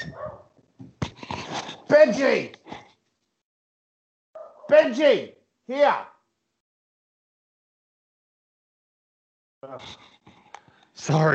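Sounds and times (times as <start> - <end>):
dog whining and whimpering: 0.0 - 0.5
speech: 1.9 - 2.6, 4.7 - 6.1, 9.6 - 10.1, 11.0 - 11.3.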